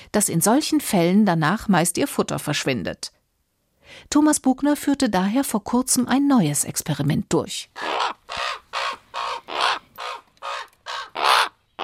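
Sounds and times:
speech: 0.1s - 3.2s, 3.9s - 8.6s
raven croaking harshly: 7.8s - 11.8s.

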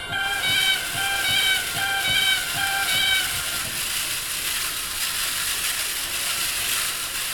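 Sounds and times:
short-resonator organ reed pipe honking like a cackling goose: 0.2s - 3.6s
faint chattering tones of organ reed pipe: 0.2s - 5.8s
breathy airy hiss of organ reed pipe: 0.2s - 7.3s.

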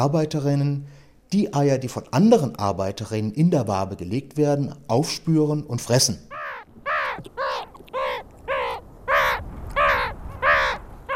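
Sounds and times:
speech: 0.0s - 6.3s
meerkat alarm calls, harsh nasal barks: 6.3s - 11.1s.

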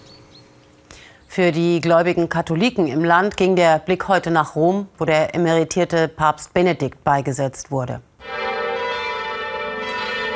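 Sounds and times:
speech: 1.4s - 8.4s
church bells tolling in memorial: 8.2s - 10.3s.

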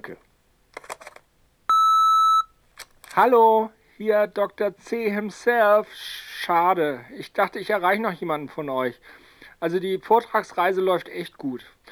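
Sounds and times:
speech: 0.0s - 0.3s, 3.2s - 11.8s
single loud steady electronic answering-machine beep: 1.7s - 2.5s.

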